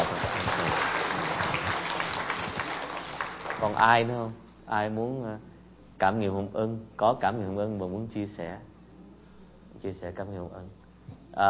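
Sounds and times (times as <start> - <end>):
room full of people clapping: 0.0 - 3.9
speech: 3.6 - 8.7, 9.8 - 10.8.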